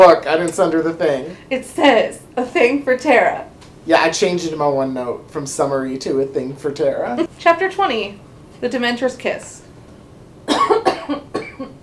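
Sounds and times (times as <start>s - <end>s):
speech: 0.0s - 9.6s, 11.1s - 11.7s
harsh coughs: 10.5s - 11.8s.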